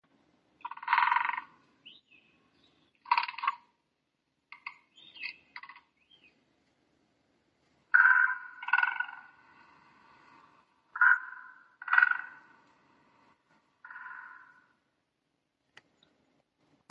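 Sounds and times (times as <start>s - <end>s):
great spotted woodpecker: 0.6s - 3.7s, 4.5s - 6.4s, 7.9s - 14.8s.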